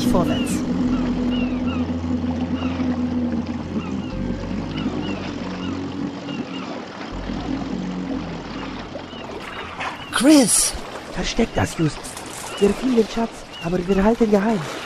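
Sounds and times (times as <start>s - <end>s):
boat engine revving while towing a sailboat by rope: 0.0s - 14.8s
speech: 0.1s - 0.9s, 10.2s - 14.8s.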